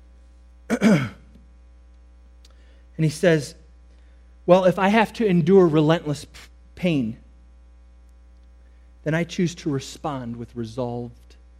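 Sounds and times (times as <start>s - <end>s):
faint low hum: 0.0s - 11.5s
man clearing his throat with a gravelly rasp: 0.7s - 1.4s
speech: 0.8s - 1.2s, 3.0s - 3.6s, 4.5s - 7.2s, 9.0s - 11.3s.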